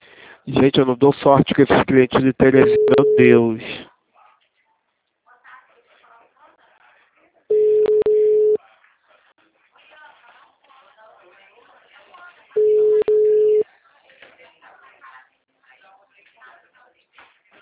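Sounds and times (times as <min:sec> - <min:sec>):
speech: 0:00.5 - 0:03.9
busy tone after a dropped phone call: 0:02.4 - 0:03.5, 0:07.5 - 0:08.6, 0:12.6 - 0:13.6
faint talk: 0:03.8 - 0:17.6.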